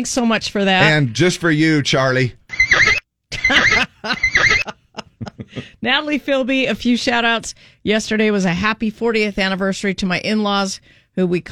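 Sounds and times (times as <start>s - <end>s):
speech: 0.0s - 2.8s, 5.8s - 11.5s
horse whinnying: 2.5s - 4.7s
laughter: 3.3s - 5.8s.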